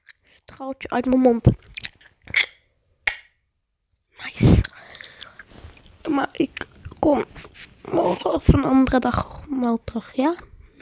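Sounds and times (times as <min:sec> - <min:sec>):
speech: 0:00.5 - 0:01.7, 0:06.2 - 0:10.5
person chewing food with crunchy bites: 0:01.4 - 0:02.6, 0:04.6 - 0:07.7.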